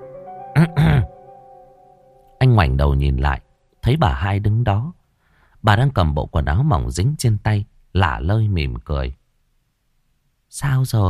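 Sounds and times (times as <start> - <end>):
quiet steady tone: 0.0 - 4.0
woman clearing her throat: 0.6 - 1.1
speech: 2.6 - 5.0, 5.6 - 9.2, 10.5 - 11.0.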